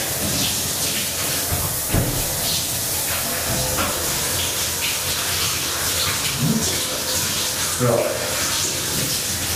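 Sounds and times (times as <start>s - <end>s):
shower running: 0.0s - 9.5s
speech: 7.8s - 8.2s.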